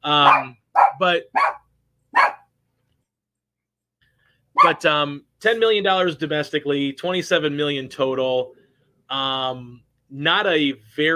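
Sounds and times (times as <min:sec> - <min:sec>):
speech: 0:00.0 - 0:01.6, 0:04.6 - 0:11.1
small dog barking: 0:00.2 - 0:02.5, 0:04.6 - 0:04.8.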